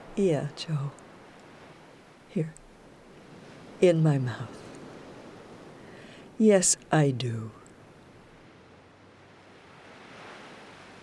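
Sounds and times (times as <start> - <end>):
Pacific Ocean surf breaking: 0.0 - 8.3
speech: 0.2 - 1.0, 2.3 - 2.6, 3.8 - 4.6, 6.4 - 7.6.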